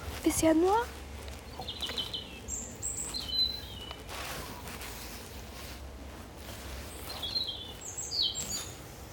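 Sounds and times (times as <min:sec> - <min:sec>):
steady outdoor hiss: 0:00.0 - 0:09.1
speech: 0:00.2 - 0:01.0
European robin chirping: 0:01.5 - 0:04.2, 0:06.7 - 0:08.8.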